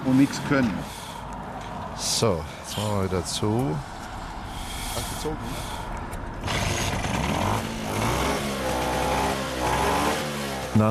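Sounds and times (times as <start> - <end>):
speech: 0.1 - 1.0, 2.0 - 3.9, 5.2 - 5.8
Vespa scooter engine idling and revving after a repair: 3.2 - 10.8.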